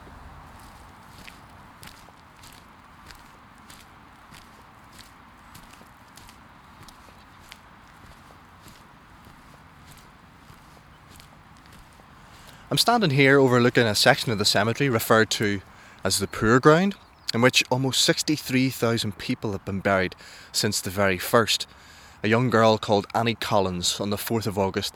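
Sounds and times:
footsteps walking through a cemetery: 0:00.0 - 0:16.1
speech: 0:12.7 - 0:24.9.

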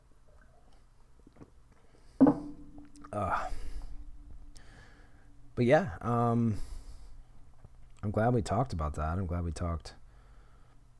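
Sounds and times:
soft knock of a bottle or glass: 0:02.2 - 0:02.8
speech: 0:03.1 - 0:03.6, 0:05.6 - 0:06.7, 0:08.0 - 0:10.0.

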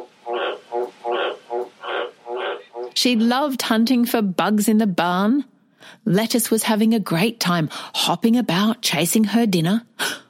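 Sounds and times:
frog croaking: 0:00.0 - 0:03.0
speech: 0:03.0 - 0:10.2.

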